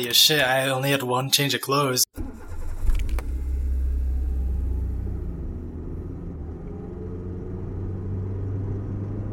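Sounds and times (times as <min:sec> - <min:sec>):
speech: 0:00.0 - 0:02.2
car engine starting: 0:02.2 - 0:09.3.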